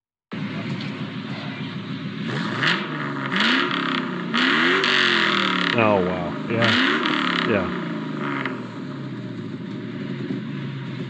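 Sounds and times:
V8 Mustang GT with pipe bomb catback exhaust revving: 0.4 - 11.0
people reacting: 5.8 - 6.8
speech: 7.5 - 7.8.

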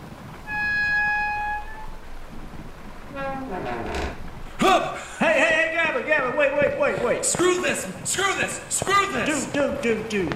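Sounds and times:
door creaking open: 0.4 - 5.2
speech: 3.4 - 5.1, 6.2 - 10.3.

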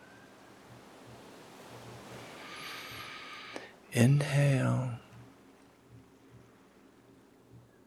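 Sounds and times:
ocean waves breaking on a beach: 0.0 - 3.8
speech: 4.0 - 5.0.

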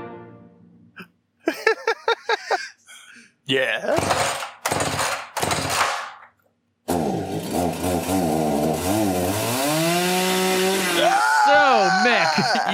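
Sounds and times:
laughter: 1.4 - 4.0, 10.9 - 12.7
speech: 3.5 - 4.4
chainsaw sound effect from soundboard sputtering and revving: 4.0 - 6.1, 6.8 - 12.7.

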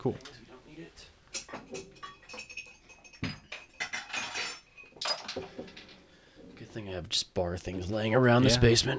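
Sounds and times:
speech: 0.0 - 1.1, 6.8 - 8.9
glassware clinking in a basement as a glass is fetched: 1.3 - 6.7.

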